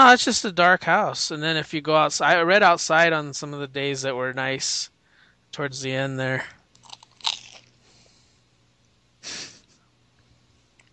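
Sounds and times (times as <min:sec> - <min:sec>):
speech: 0:00.0 - 0:04.9, 0:05.5 - 0:06.6
quiet breathing: 0:05.0 - 0:05.5, 0:07.8 - 0:08.6
person biting into crisp toast crust: 0:06.7 - 0:08.1.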